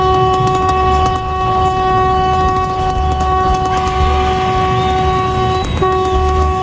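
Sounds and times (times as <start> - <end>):
heavy rumbling background: 0.0 - 6.6
loud horn blaring: 0.0 - 6.6.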